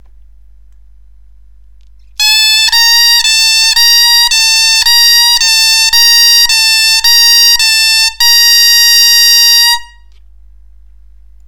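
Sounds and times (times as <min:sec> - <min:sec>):
bombarde playing a high natural A to B scale: 0:02.2 - 0:10.0.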